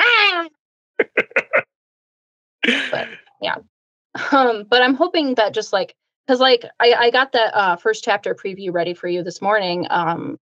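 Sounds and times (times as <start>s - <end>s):
human voice imitating cat meows: 0.0s - 0.5s
laughter: 2.6s - 3.2s
speech: 2.7s - 10.4s.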